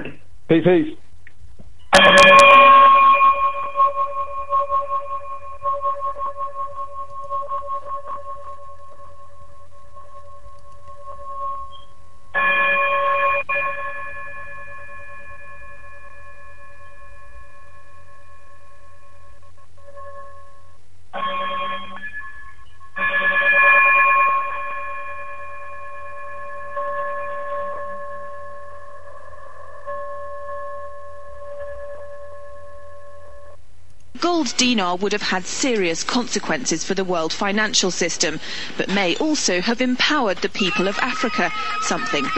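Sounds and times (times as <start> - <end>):
speech: 0.0 - 1.0, 34.5 - 42.3
bright high-pitched outro bell chime: 1.9 - 33.6
laughter: 40.3 - 42.3.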